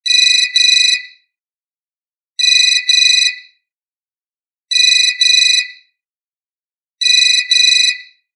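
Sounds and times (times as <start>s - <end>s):
early 2000s phone ringtone: 0.1s - 1.0s, 2.4s - 3.4s, 4.7s - 5.8s, 7.0s - 8.2s.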